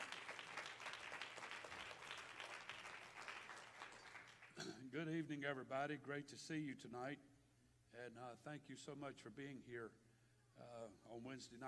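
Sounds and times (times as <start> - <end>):
large audience clapping hands: 0.0 - 4.7
speech: 4.8 - 7.3, 8.0 - 10.0, 10.6 - 11.6.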